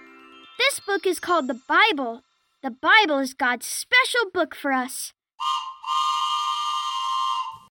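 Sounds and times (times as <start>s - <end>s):
speech: 0.7s - 5.6s
train whistle: 5.4s - 7.7s.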